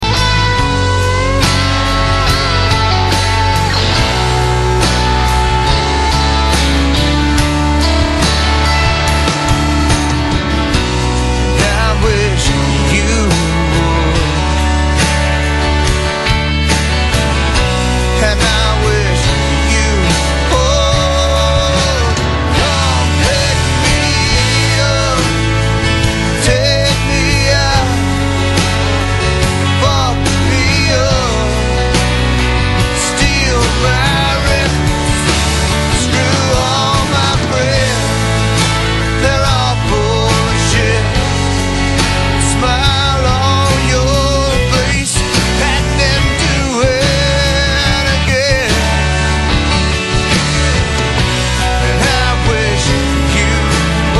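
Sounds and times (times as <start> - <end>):
folk guitar: 0.0 - 54.1.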